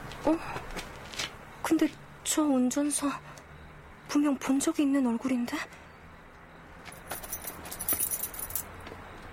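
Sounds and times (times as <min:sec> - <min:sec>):
speech: 0:00.3 - 0:00.7, 0:01.7 - 0:03.4, 0:04.1 - 0:05.8
keys jingling as driver takes them out: 0:06.9 - 0:08.8.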